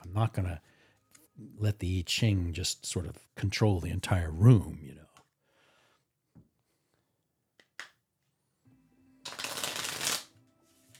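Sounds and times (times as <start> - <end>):
speech: 0.1 - 0.8, 1.4 - 5.0
deck of tarot cards being shuffled: 9.2 - 10.9.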